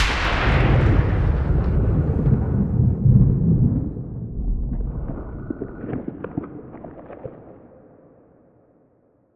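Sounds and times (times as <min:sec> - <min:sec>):
thunderclap: 0:00.0 - 0:06.8.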